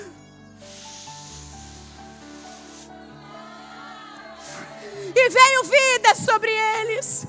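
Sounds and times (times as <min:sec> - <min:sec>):
breathy blowing into two balloons: 0:00.0 - 0:05.3
steady tonal background: 0:00.4 - 0:06.8
two balloons being inflated by breath: 0:00.6 - 0:03.0
speech: 0:05.2 - 0:07.2.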